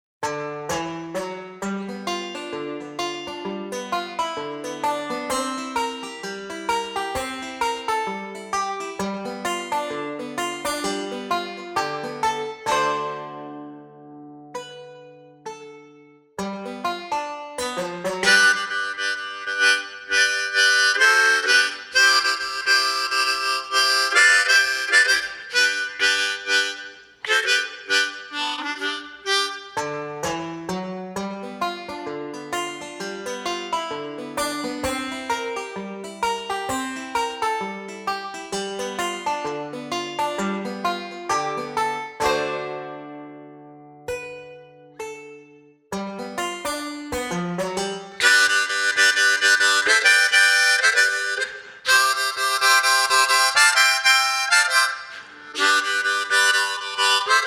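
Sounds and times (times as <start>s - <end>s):
banjo: 0.2s - 57.4s
harmonica: 1.1s - 13.4s, 16.6s - 43.2s, 46.2s - 57.4s.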